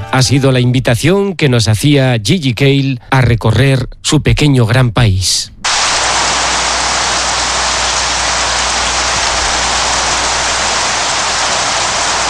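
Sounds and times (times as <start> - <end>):
speech: 0.2 - 5.5
heavy rain shower: 5.7 - 12.2.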